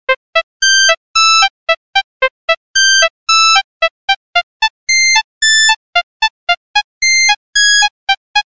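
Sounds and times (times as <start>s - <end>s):
ringtone: 0.1s - 8.5s.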